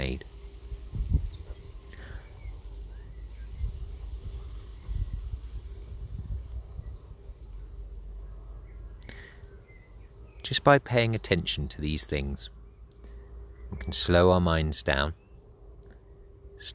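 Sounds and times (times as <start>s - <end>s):
low outdoor rumble of wind: 0.0s - 10.3s
faint birdsong: 0.0s - 16.7s
speech: 10.5s - 12.6s, 13.7s - 15.2s, 16.6s - 16.7s.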